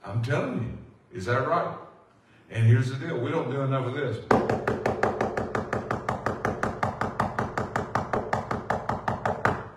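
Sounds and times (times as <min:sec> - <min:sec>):
speech: 0:00.1 - 0:01.8, 0:02.5 - 0:05.1
rapid steady knocking on a front door: 0:04.3 - 0:09.7.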